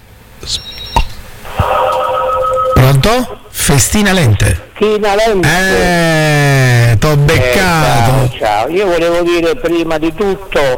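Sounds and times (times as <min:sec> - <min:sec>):
loud steady telephone tone: 0:01.6 - 0:03.3
high telephone beeps signalling an incoming call at a radio station: 0:01.7 - 0:03.0
speech: 0:03.0 - 0:10.7.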